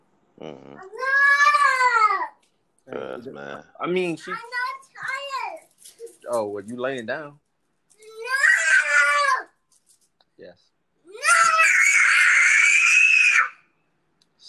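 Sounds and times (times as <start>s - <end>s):
speech: 0.4s - 1.2s, 3.2s - 4.6s, 6.3s - 7.4s
child screaming: 0.8s - 2.4s, 8.0s - 9.6s, 11.1s - 13.7s.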